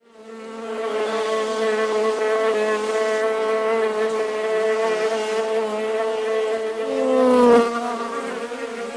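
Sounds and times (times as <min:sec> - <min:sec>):
bee buzzing: 0:00.2 - 0:08.9.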